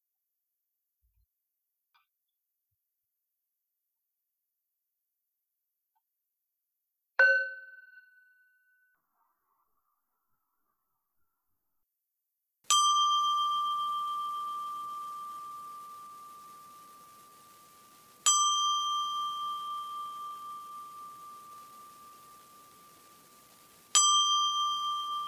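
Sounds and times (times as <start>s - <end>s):
bell being struck: 12.7s - 25.2s.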